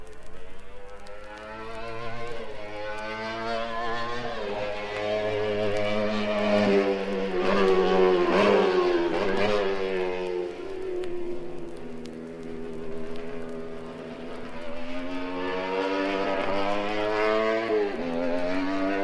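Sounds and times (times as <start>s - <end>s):
race car engine roaring through a hairpin on a circuit: 0.0s - 19.0s.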